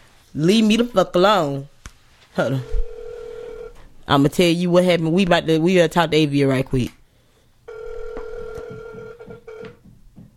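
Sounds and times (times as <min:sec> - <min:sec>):
speech: 0:00.3 - 0:01.7, 0:02.4 - 0:02.8, 0:04.1 - 0:07.0
buzzing phone ringback tone: 0:02.6 - 0:03.8, 0:07.7 - 0:09.8.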